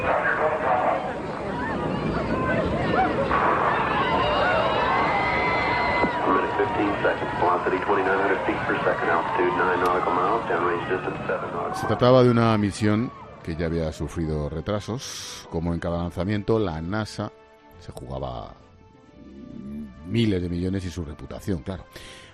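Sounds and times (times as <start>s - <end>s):
family members screaming and crying in distress at the Space Shuttle Challenger explosion: 1.0s - 13.6s
speech: 7.1s - 19.5s, 20.1s - 22.2s.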